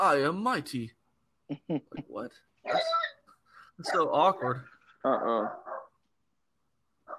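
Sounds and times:
speech: 0.0s - 3.0s, 3.8s - 5.8s
dogs barking: 3.8s - 6.0s.

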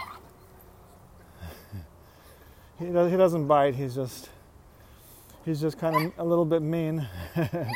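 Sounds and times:
small puppy yipping and whimpering: 0.0s - 0.4s, 5.9s - 6.2s
speech: 2.8s - 4.4s, 5.5s - 7.7s.

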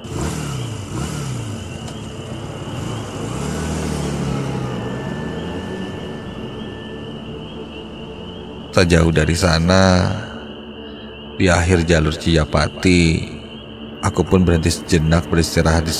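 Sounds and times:
motorcycle engine revving as the rider speeds off on a road after midnight: 0.0s - 8.8s
speech: 8.8s - 10.3s, 11.4s - 13.4s, 14.0s - 15.9s.

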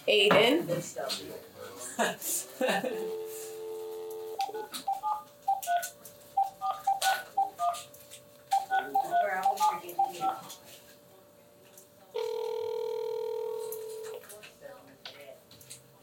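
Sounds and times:
speech: 0.1s - 3.4s
steady electronic ringback tone of an outgoing phone call: 3.1s - 7.8s, 8.6s - 10.4s, 12.2s - 14.1s
brief chirpy beeps: 4.4s - 7.8s, 8.5s - 10.4s.

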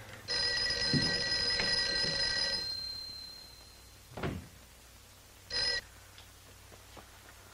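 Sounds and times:
telephone bell ringing unanswered on the far end of a call: 0.3s - 3.9s, 5.5s - 5.8s.

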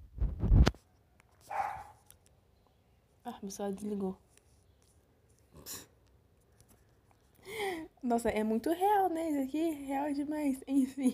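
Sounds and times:
dog barking: 1.5s - 2.0s
speech: 3.3s - 4.3s, 8.1s - 11.1s.

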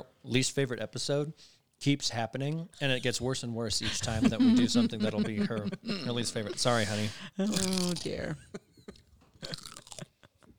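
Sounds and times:
speech: 0.2s - 8.6s
laughter: 3.8s - 7.5s
person biting into and chewing a crunchy snack: 7.5s - 8.2s, 9.4s - 10.1s.

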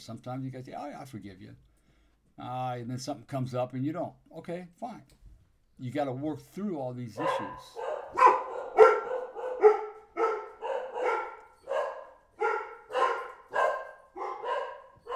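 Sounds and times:
speech: 0.0s - 1.7s, 2.4s - 5.2s, 5.8s - 7.9s
dogs barking indoors at home: 7.2s - 15.1s.

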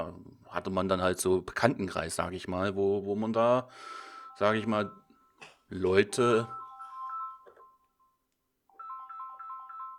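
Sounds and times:
speech: 0.0s - 6.6s
mobile phone ringtone with repeating electronic melody: 3.8s - 9.9s.

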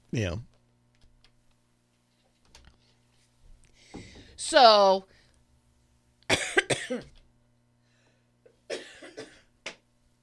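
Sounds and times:
faint steady hum: 0.0s - 10.2s
speech: 0.1s - 0.5s, 4.4s - 5.1s, 6.9s - 7.2s
coughing: 6.3s - 7.2s, 8.5s - 9.8s.

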